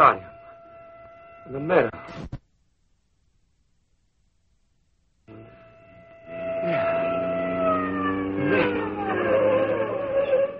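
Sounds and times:
speech: 0.0 - 0.3, 1.5 - 2.4
police siren wailing: 0.0 - 2.0, 5.3 - 10.5
steady hum: 0.0 - 9.1.

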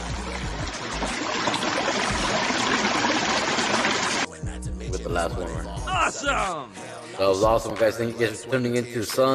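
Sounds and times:
flowing water sound effect played through a sound card: 0.0 - 4.3
speech: 5.2 - 9.3.

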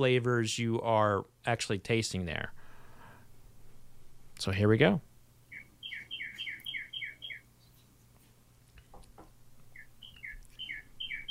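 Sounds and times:
speech: 0.0 - 2.6, 4.4 - 5.1
low background hum: 0.0 - 11.2
big red cardinal singing whistled chirps: 5.5 - 7.7, 9.8 - 11.2.

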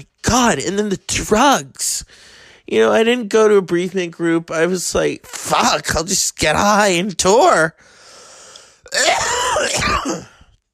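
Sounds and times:
speech: 0.0 - 8.0, 8.9 - 10.4
strained breath: 2.1 - 2.7, 7.8 - 8.9
rough wheezy cough: 8.9 - 10.6.

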